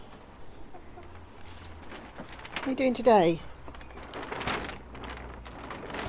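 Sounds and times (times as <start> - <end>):
rustling farmyard background: 0.0 - 6.0
hens clucking: 0.4 - 2.2
speech: 2.7 - 3.5.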